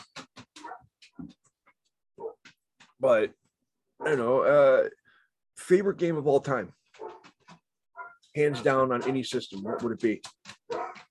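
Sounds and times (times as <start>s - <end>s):
dog barking: 0.6s - 0.9s, 2.2s - 2.4s, 7.0s - 7.3s, 8.0s - 10.0s, 10.6s - 11.0s
speech: 3.0s - 3.4s, 4.0s - 5.0s, 5.7s - 6.8s, 8.4s - 10.4s.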